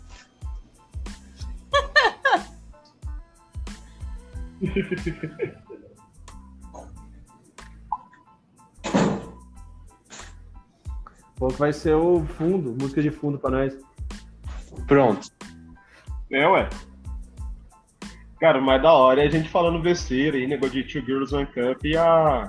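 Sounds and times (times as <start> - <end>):
laughter: 1.7 - 2.6, 4.6 - 6.0
speech: 4.6 - 5.7, 11.4 - 13.9, 14.9 - 15.4, 16.3 - 16.9, 18.4 - 22.4
bedroom door pulled shut with a soft bump: 8.8 - 9.4.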